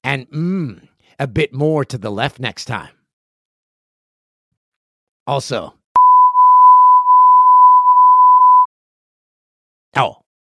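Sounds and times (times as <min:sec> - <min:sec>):
speech: 0:00.1 - 0:03.0, 0:05.3 - 0:05.8, 0:10.0 - 0:10.2
steady electronic censor beep at mid pitch: 0:06.0 - 0:08.7.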